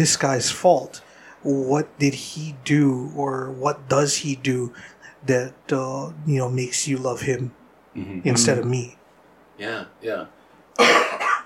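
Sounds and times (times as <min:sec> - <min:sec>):
speech: 0:00.0 - 0:09.0, 0:09.6 - 0:11.2
harsh cough from people fighting off a winter illness: 0:10.8 - 0:11.4
throat clearing from people with a winter illness: 0:10.8 - 0:11.4.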